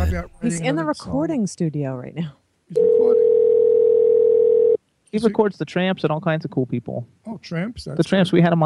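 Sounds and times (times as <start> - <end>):
speech: 0.0 - 3.2, 5.1 - 8.6
electronic telephone ring tone: 2.8 - 4.8.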